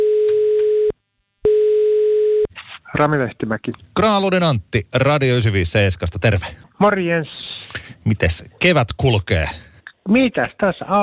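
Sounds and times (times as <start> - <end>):
telephone ringing tone while calling someone: 0.0 - 2.5
speech: 3.0 - 11.0.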